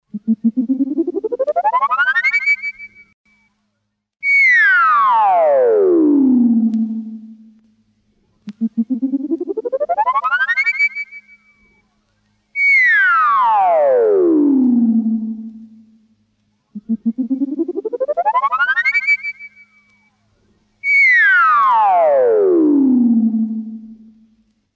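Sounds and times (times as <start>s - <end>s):
ascending and descending electronic sound pattern sequence: 0.2s - 3.1s, 4.5s - 7.6s, 8.5s - 11.3s, 12.8s - 16.0s, 16.8s - 19.6s, 20.8s - 24.3s.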